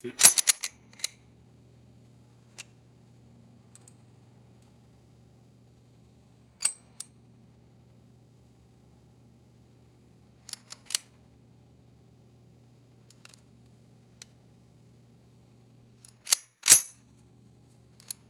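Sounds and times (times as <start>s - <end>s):
bullets loaded into a revolver cylinder: 0.2s - 1.1s, 16.1s - 16.9s.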